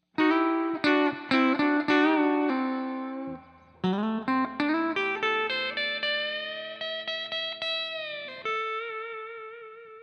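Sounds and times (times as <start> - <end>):
soft guitar solo: 0.2 - 10.0.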